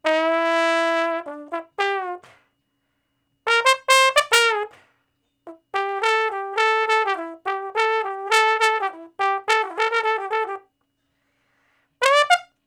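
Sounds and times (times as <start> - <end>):
trombone playing slow blues: 0.0 - 2.4, 3.5 - 4.8, 5.5 - 10.7, 12.0 - 12.5.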